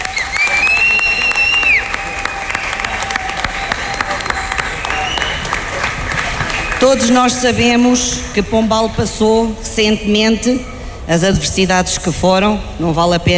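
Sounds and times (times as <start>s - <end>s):
high whistle from audience: 0.0s - 5.6s
audience applause: 0.0s - 7.2s
audience cheering: 0.0s - 7.3s
speech: 6.8s - 13.3s.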